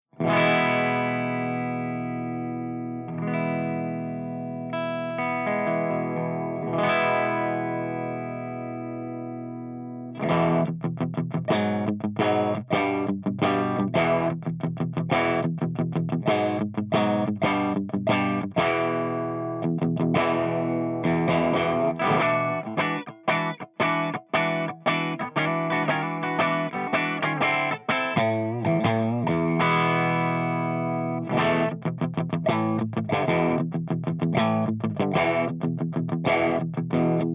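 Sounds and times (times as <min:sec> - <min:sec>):
clean electric guitar with P90 pickup through Blackstar HT amp and V30 speaker: 0:00.0 - 0:37.3.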